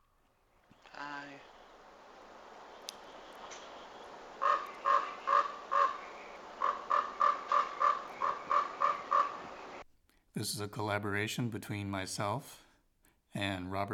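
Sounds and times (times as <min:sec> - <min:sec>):
faint hiss: 0:00.0 - 0:13.4
raven giving harsh throaty croaks: 0:00.6 - 0:09.8
speech: 0:10.4 - 0:12.7, 0:13.3 - 0:13.9.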